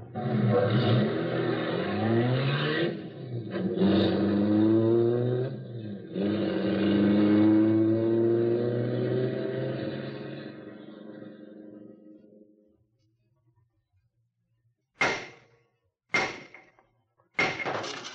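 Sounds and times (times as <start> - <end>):
getaway car engine revving and accelerating through gear shifts: 0.0 - 12.4.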